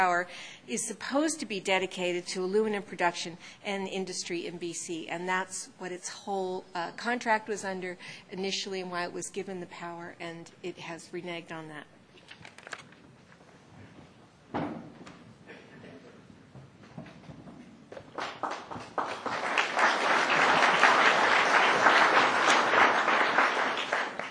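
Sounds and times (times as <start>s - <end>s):
speech: 0.0s - 12.0s
audience clapping: 17.9s - 24.2s.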